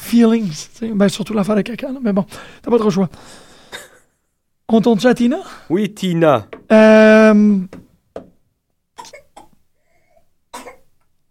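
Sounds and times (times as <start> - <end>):
speech: 0.1 - 3.5, 4.7 - 7.8
small dry coughs: 3.6 - 4.1, 9.0 - 9.6, 10.5 - 10.9.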